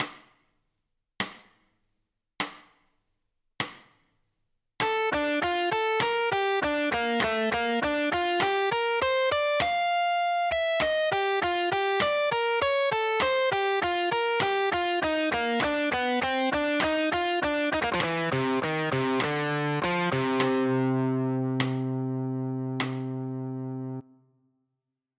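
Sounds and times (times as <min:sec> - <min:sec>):
Dm7 Gm7 and Am7b5 arpeggios with chromatism: 0:04.9 - 0:24.0.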